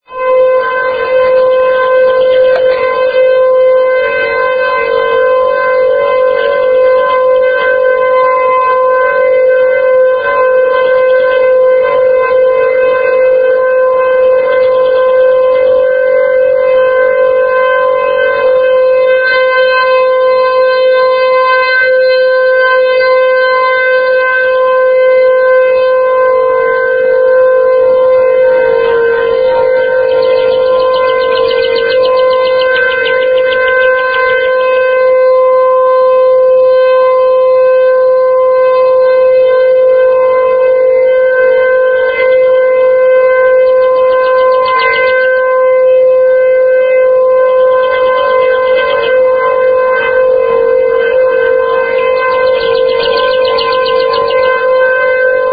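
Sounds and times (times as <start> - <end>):
tornado warning sirens in Linn County: 0.0 - 55.5.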